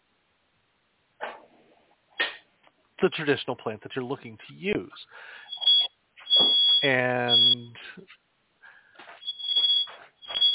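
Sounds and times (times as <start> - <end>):
speech: 3.0 - 5.4, 6.8 - 8.2
smoke alarm beeping in a kitchen where baguettes are baking: 5.4 - 7.7, 9.1 - 10.5.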